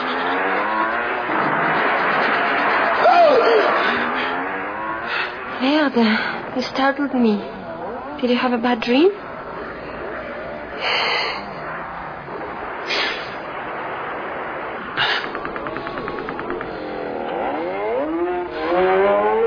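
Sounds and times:
motorcycle engine sounds from a movie playing on a screen: 0.0 - 19.4
speech: 5.8 - 7.6, 8.2 - 9.3, 10.8 - 11.1.

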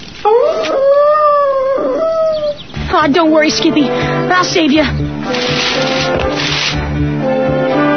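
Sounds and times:
dog howling: 0.2 - 2.6
speech: 3.1 - 7.8.

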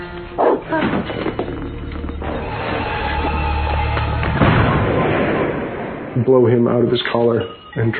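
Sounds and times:
dog barking: 0.4 - 0.7
low booming rumble: 2.2 - 6.9
speech: 6.3 - 7.9.

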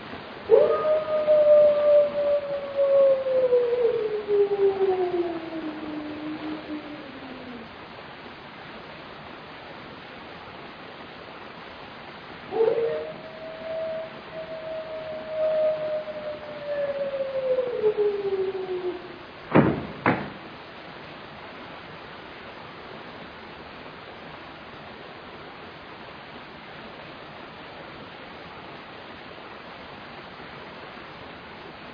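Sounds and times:
faint hiss: 0.0 - 31.9
wolf howling: 0.5 - 7.7, 12.5 - 19.3.

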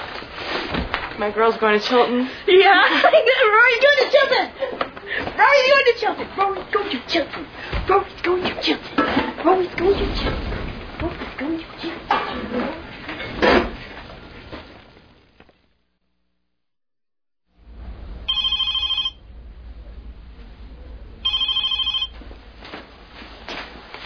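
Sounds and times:
speech: 1.2 - 10.5
low rumble: 9.5 - 15.3, 17.6 - 18.5, 19.2 - 21.3
telephone ringing in electronic bursts: 18.3 - 19.3, 21.2 - 22.2.

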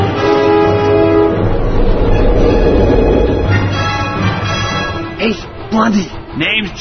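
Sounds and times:
train wheels and engine rumbling: 0.2 - 5.0
speech: 5.8 - 6.8.

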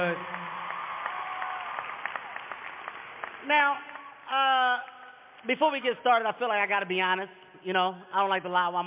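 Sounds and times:
audience in front of a stage applauding: 0.0 - 4.3
speech: 3.4 - 8.8.

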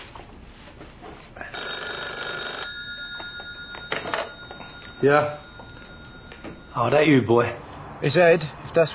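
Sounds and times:
telephone being dialled: 1.6 - 5.0
speech: 5.0 - 5.4, 6.8 - 8.9.

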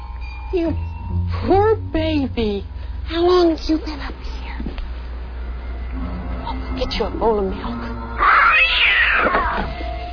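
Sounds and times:
faint steady hum: 0.0 - 10.1
speech: 0.5 - 4.7, 6.8 - 9.8
cat meowing: 8.2 - 9.7.

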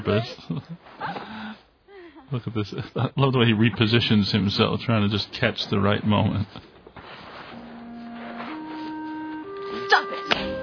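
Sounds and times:
speech: 0.0 - 1.6, 2.3 - 6.7
scuffle-like rustle: 5.7 - 10.2
sustained musical tones: 7.5 - 10.6
slap to the face: 10.3 - 10.6.

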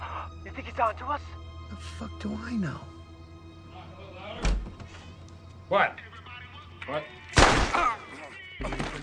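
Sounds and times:
speech: 0.7 - 2.9, 5.7 - 6.0, 6.9 - 7.2
gunshot blasts at a front door: 7.4 - 8.0.

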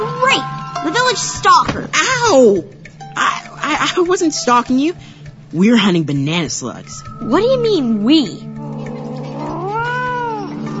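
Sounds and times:
speech: 1.2 - 8.5
cat yowling: 8.6 - 10.7.

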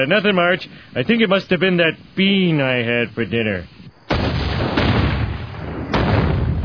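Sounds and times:
speech: 0.0 - 3.8
homemade liquor still exploding: 4.1 - 6.6.

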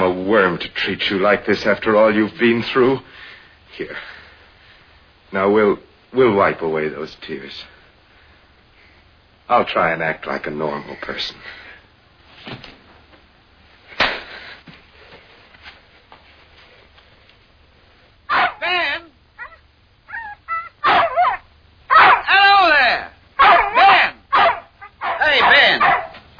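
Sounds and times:
speech: 0.2 - 3.2, 3.8 - 4.2, 5.3 - 7.7, 9.5 - 11.6
old dog put outside whimpering, whining and barking: 18.3 - 18.7, 19.4 - 22.3, 23.4 - 26.3.

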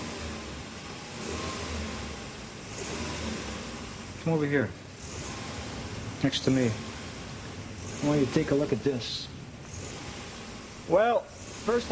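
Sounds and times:
car engine revving during a diagnostic test: 0.0 - 11.9
car engine throw rods chattering: 1.3 - 11.9
speech: 4.2 - 4.8, 6.2 - 6.9, 8.0 - 9.3, 10.9 - 11.9.

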